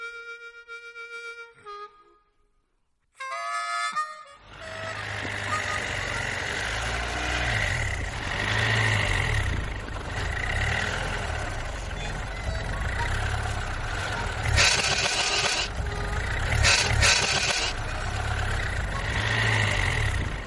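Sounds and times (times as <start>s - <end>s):
Mustang car engine sputtering and stalling: 4.4s - 20.4s.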